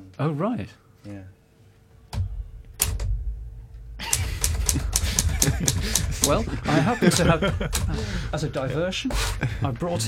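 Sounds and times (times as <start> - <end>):
speech: 0.2 - 1.4, 5.5 - 10.0
typewriter clacks: 4.0 - 6.4
laughter: 4.0 - 10.0.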